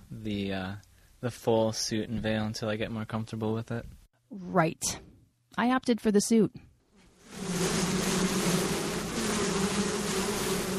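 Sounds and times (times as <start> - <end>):
speech: 0.2 - 6.7
honeybees buzzing around an opened hive on a hot overcast day: 7.1 - 10.7.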